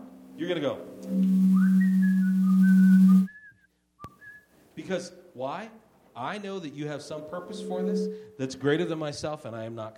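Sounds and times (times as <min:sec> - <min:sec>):
speech: 0:00.4 - 0:01.5, 0:04.8 - 0:09.9
low sustained hum: 0:00.9 - 0:03.3, 0:07.3 - 0:08.2
long steady whistled notes: 0:01.0 - 0:04.5.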